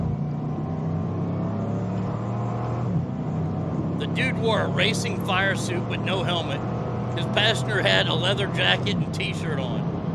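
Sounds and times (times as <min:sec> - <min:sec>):
car engine accelerating onto the Autobahn: 0:00.0 - 0:10.1
speech: 0:04.0 - 0:09.9.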